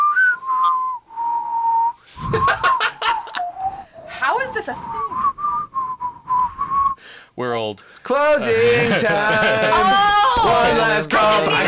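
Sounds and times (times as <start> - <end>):
people whistling a song melody: 0.0 - 7.0
laughter: 2.2 - 3.5, 8.4 - 11.6
speech: 7.4 - 11.6.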